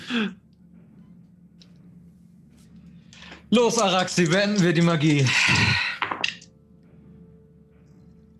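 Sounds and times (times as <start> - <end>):
speech: 0.1 - 0.4, 3.5 - 5.9
dice tumbling across a hard tabletop: 6.0 - 6.4.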